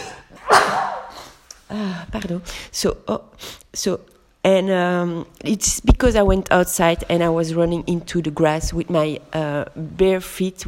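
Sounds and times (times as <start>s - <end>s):
person sneezing: 0.0s - 1.4s
speech: 1.7s - 10.6s.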